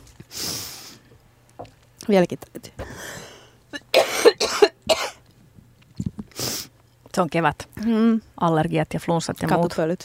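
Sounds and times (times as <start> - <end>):
speech: 2.1 - 3.2, 7.2 - 10.0
harsh coughing: 3.8 - 5.2.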